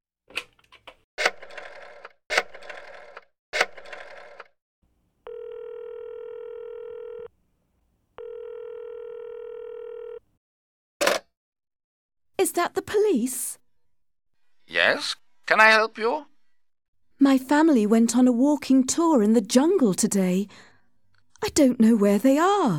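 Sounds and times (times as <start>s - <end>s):
telephone being dialed with clicking, whirring turns: 1.2s - 4.5s, 5.3s - 7.3s
long steady telephone ringing tones: 5.2s - 7.3s, 8.2s - 10.3s
speech: 12.4s - 13.6s, 14.7s - 16.3s, 17.2s - 20.7s, 21.4s - 22.7s.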